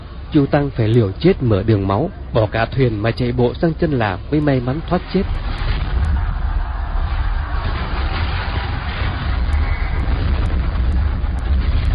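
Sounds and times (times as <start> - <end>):
speech: 0.3 - 5.7
distant continuous cannon fire: 5.2 - 11.9.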